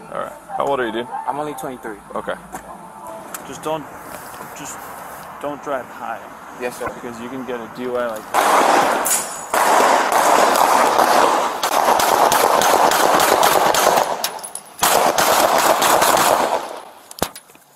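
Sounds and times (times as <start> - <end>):
speech: 0.1 - 2.6, 3.5 - 9.3
rapid gunfire in dense bursts: 8.3 - 17.0
sharp gunshot: 8.3 - 17.3.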